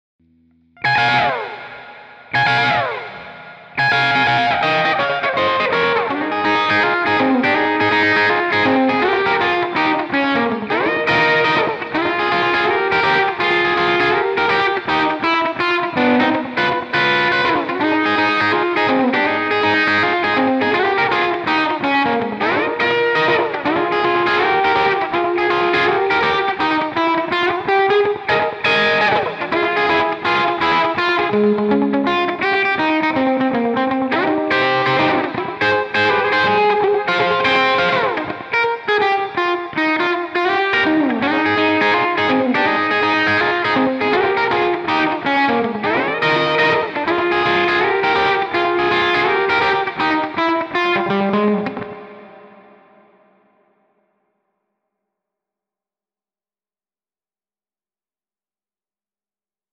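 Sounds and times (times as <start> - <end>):
guitar melody: 0.2 - 53.6.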